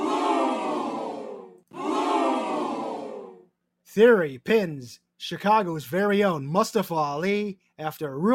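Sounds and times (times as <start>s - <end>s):
large crowd booing: 0.0s - 3.5s
speech: 3.9s - 8.3s.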